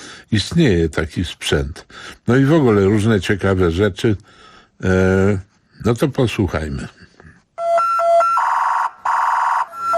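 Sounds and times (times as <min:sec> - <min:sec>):
speech: 0:00.3 - 0:07.0
police road-traffic accident emergency vehicle two-tone siren wailing: 0:07.6 - 0:09.9.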